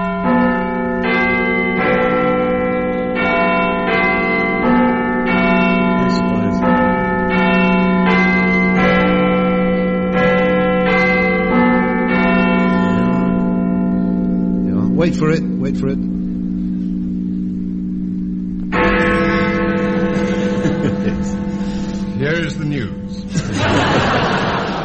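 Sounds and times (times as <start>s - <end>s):
bells ringing a chime melody slightly out of tune: 0.0s - 24.8s
laughter: 12.8s - 13.2s, 20.0s - 21.8s, 23.2s - 24.8s
speech: 15.0s - 16.1s.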